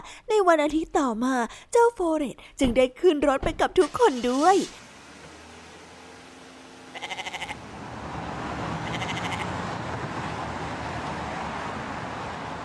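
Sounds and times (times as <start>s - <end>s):
speech: 0.4s - 4.9s
goat bleating: 6.9s - 7.6s, 8.8s - 9.6s.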